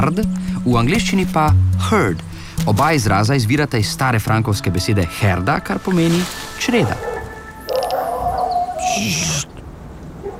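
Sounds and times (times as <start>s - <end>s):
speech: 0.0s - 7.1s, 9.0s - 9.3s
animal barking in the wild: 6.8s - 9.5s, 10.2s - 10.3s.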